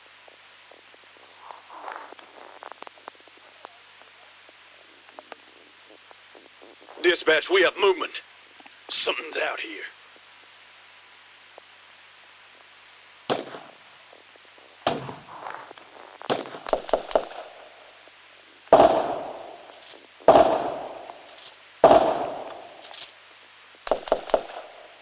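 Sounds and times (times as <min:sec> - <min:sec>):
speech: 0:07.0 - 0:08.3, 0:08.9 - 0:10.0
gunfire in single shots and bursts: 0:13.3 - 0:13.8, 0:14.9 - 0:15.5, 0:16.3 - 0:17.7, 0:18.8 - 0:23.1, 0:23.9 - 0:24.8.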